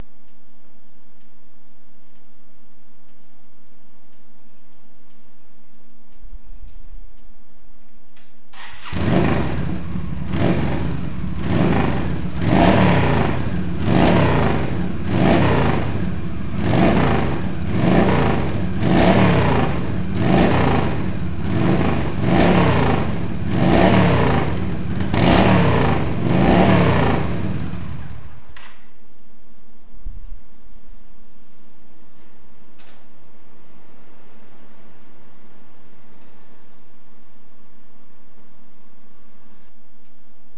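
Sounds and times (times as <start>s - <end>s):
XVS1300 exhausts: 8.5s - 28.8s, 32.0s - 40.5s.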